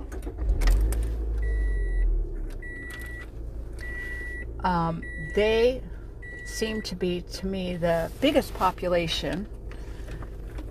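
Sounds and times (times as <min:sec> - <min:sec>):
car engine cranking and idling: 0:00.0 - 0:10.6
electronic dashboard chime beeping: 0:01.4 - 0:05.6, 0:06.2 - 0:07.0
speech: 0:04.6 - 0:05.9, 0:06.5 - 0:09.6.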